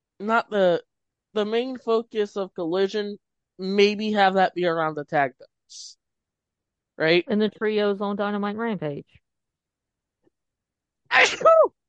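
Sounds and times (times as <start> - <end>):
speech: 0.2 - 6.0, 7.0 - 9.2, 11.1 - 11.8
sneeze: 11.1 - 11.7.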